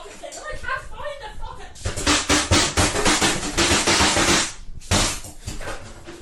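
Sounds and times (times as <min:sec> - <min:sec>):
fist pounding a sink in anger over soup: 0:01.8 - 0:06.2.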